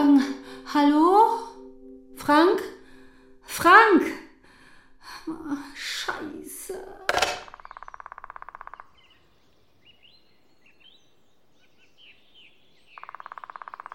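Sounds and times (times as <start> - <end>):
speech: 0.2 - 1.1, 2.3 - 2.8, 3.5 - 4.2, 5.0 - 7.4
woodpecker drumming: 7.1 - 9.2, 12.9 - 13.9
other birds chirping softly: 7.4 - 13.9.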